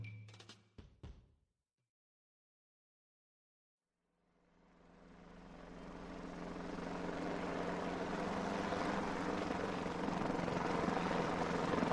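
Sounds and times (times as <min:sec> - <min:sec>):
helicopter rotor roar: 0:04.5 - 0:11.8.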